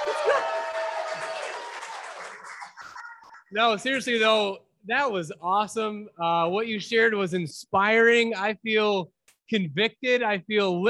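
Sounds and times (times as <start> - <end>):
audience applause: 0.0 - 3.1
audience cheering voices: 0.0 - 3.2
speech: 3.5 - 10.8.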